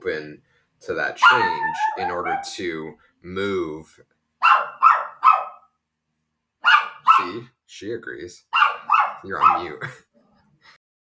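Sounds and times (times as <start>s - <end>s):
speech: 0.2s - 4.2s, 7.2s - 8.6s, 9.2s - 10.8s
dog barking: 1.2s - 2.6s, 4.4s - 5.7s, 6.6s - 7.4s, 8.5s - 9.9s.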